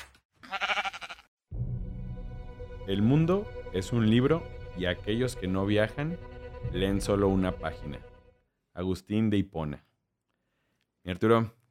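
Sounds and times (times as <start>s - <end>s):
sheep bleating: 0.4s - 1.3s
speech: 2.9s - 8.1s, 8.8s - 9.9s, 11.0s - 11.6s.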